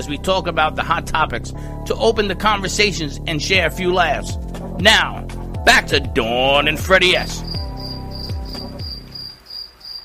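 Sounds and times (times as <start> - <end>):
speech: 0.0 - 7.6
crickets chirping: 7.0 - 10.0.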